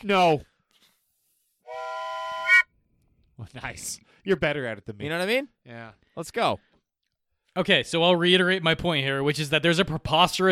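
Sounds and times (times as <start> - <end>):
speech: 0.0 - 0.5, 3.4 - 6.7, 7.6 - 10.5
whistle blast: 1.7 - 2.7.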